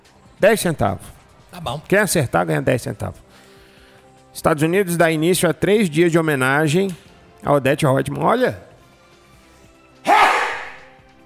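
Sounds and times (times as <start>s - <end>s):
speech: 0.4s - 3.2s, 4.4s - 8.7s
person sneezing: 10.1s - 10.9s.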